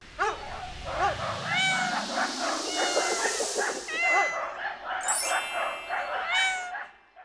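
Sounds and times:
steady noise: 0.0 - 5.9
house cat meowing: 1.0 - 4.6, 6.1 - 7.0.

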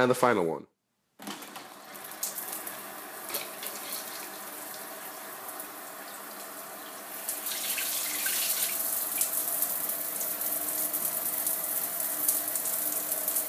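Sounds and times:
speech: 0.0 - 0.7
water running from a shower: 1.4 - 13.4.

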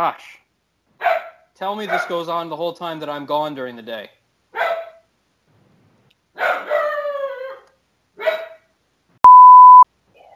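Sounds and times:
speech: 0.0 - 0.4, 1.6 - 4.6
dog barking: 1.0 - 2.2, 4.5 - 5.1, 6.4 - 7.6, 8.2 - 8.7
short steady electronic beep: 9.2 - 9.8.

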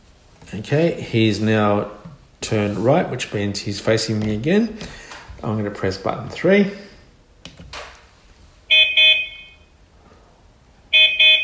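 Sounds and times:
speech: 0.4 - 6.8
toy robot horn beeping: 8.7 - 9.6, 10.9 - 11.4.

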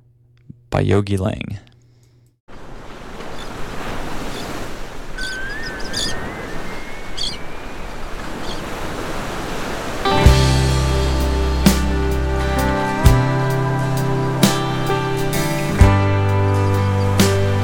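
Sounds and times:
speech: 0.8 - 1.7
ocean surf: 2.5 - 17.6
faint gliding whistle: 5.2 - 8.6
music: 10.1 - 17.6.

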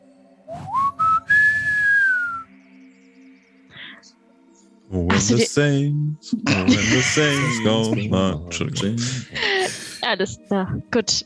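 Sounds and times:
person whistling a short tune: 0.5 - 2.5
speech: 4.9 - 9.4, 10.1 - 11.2
laughter: 6.4 - 9.8.

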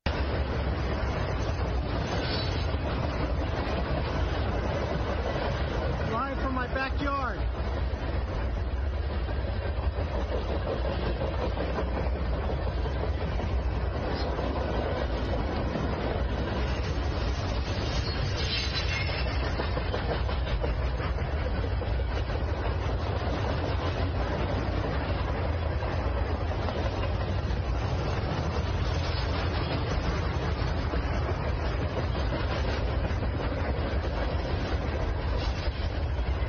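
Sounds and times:
long freight train carrying military equipment rumbling past: 0.0 - 36.4
train clacking over the rails: 0.0 - 36.4
metallic squeals of train cars: 2.1 - 2.7, 17.7 - 19.4.

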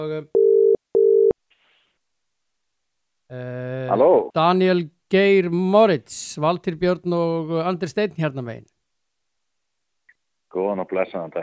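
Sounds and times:
speech: 0.0 - 0.4, 3.3 - 8.7, 10.5 - 11.4
telephone line tones while a call is placed: 0.4 - 1.4.

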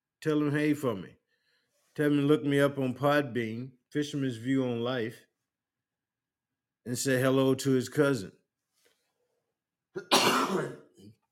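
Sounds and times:
speech: 0.2 - 1.2, 2.0 - 5.3, 6.8 - 8.4, 10.0 - 10.8
person with a dry throat from long talking coughing: 10.0 - 11.0.

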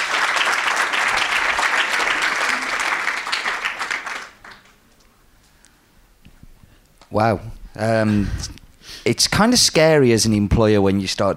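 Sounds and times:
crowd applauding: 0.0 - 4.8
speech: 7.1 - 11.3.

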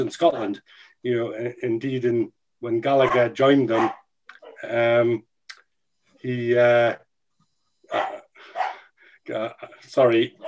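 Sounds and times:
speech: 0.0 - 4.0, 4.6 - 5.3, 6.2 - 7.0, 7.9 - 8.1, 9.3 - 10.4
dog barking in the background: 0.3 - 0.6, 3.0 - 4.6, 7.9 - 8.9.

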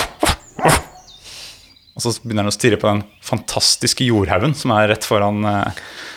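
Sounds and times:
person imitating a dog barking: 0.0 - 1.0
speech: 2.0 - 6.1.

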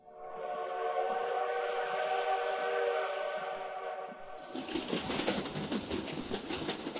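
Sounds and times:
train horn: 0.0 - 4.5
train rumbling and clattering along the tracks: 0.2 - 6.9.

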